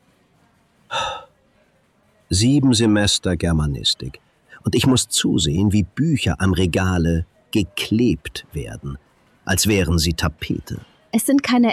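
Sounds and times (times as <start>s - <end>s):
deep calming breath drawn in: 0.9s - 1.3s
speech: 2.3s - 11.7s.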